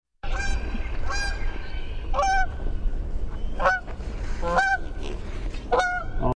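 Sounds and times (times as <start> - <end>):
Canada goose honking: 0.2 - 1.4, 2.1 - 2.5, 3.6 - 6.3.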